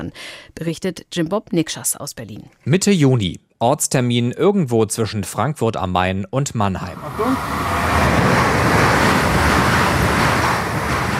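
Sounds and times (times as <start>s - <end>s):
speech: 0.0s - 8.4s
train rushing past on the Riedbahn railway line between Frankfurt am Main and Mannheim: 6.8s - 11.1s.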